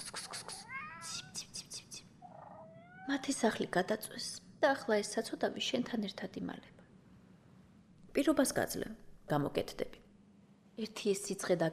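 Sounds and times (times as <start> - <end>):
ginger cat meowing faintly in a cellar: 0.4 - 1.4, 2.2 - 3.2
speech: 3.1 - 6.8, 8.2 - 10.0, 10.8 - 11.7.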